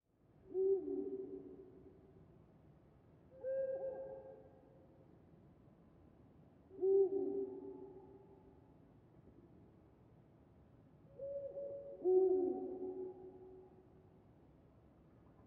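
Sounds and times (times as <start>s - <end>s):
Eurasian eagle-owl giving low hoots at night in a forest: 0.5s - 1.5s, 3.4s - 4.4s, 6.8s - 7.9s, 11.2s - 13.3s.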